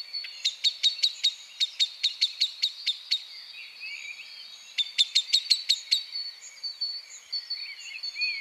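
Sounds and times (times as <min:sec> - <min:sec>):
common blackbird Turdus merula chinking calls: 0:00.0 - 0:08.3.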